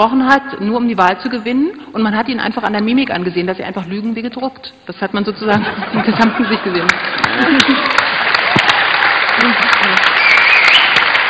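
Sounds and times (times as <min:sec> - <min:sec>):
speech: 0:00.0 - 0:08.0
laughter: 0:05.5 - 0:08.7, 0:09.3 - 0:10.2
audience applause: 0:06.9 - 0:11.2
brief whistle in the crowd: 0:10.1 - 0:11.2.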